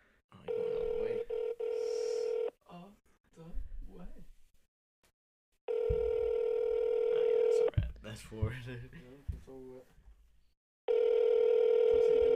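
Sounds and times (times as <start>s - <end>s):
ringback tone of an unanswered phone call: 0.5s - 2.5s, 5.7s - 7.7s, 10.9s - 12.3s.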